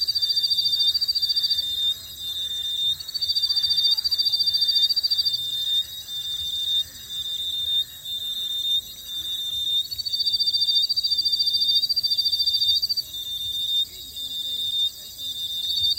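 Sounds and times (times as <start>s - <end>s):
insects trilling at a roadside in the evening in Koforidua Ghana: 0.0s - 15.9s.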